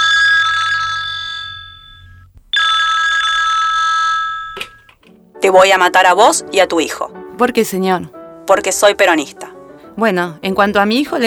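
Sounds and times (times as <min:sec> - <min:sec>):
old landline telephone bell ringing in an apartment on Maipú Street: 0:00.0 - 0:04.9
speech: 0:05.4 - 0:11.2.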